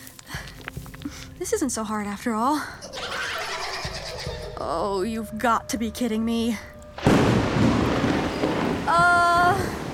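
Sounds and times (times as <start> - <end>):
speech: 1.4 - 2.9, 4.6 - 6.7, 8.9 - 9.6
heavy rain: 7.0 - 9.9.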